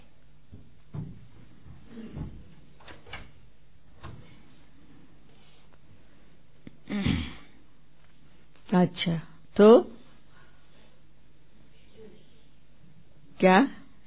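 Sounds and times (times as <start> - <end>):
soft knocks and handling noises: 0.4 - 3.3
speech: 8.7 - 9.9, 13.4 - 13.8.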